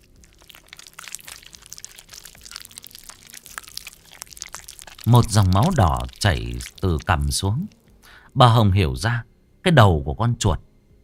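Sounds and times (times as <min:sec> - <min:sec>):
man chewing something hard with crunching: 0:00.0 - 0:08.3
speech: 0:05.1 - 0:07.8, 0:08.4 - 0:10.7.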